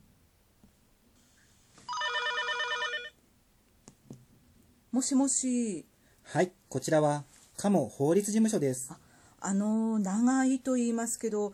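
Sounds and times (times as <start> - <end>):
telephone ring with trilling electronic warble on an outgoing call: 1.9 - 3.2
speech: 4.9 - 11.5.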